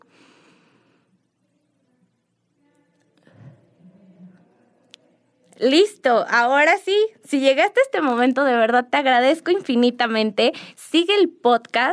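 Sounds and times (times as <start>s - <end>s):
deep slow breath: 0.0s - 1.2s
speech: 5.6s - 11.9s.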